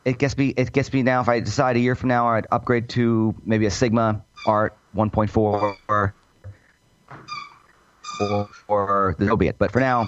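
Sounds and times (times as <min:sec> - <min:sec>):
speech: 0:00.0 - 0:06.2, 0:08.2 - 0:10.0
squeaky toy high-pitched squeal: 0:04.4 - 0:04.6, 0:05.6 - 0:06.0, 0:07.3 - 0:09.1, 0:09.8 - 0:10.0.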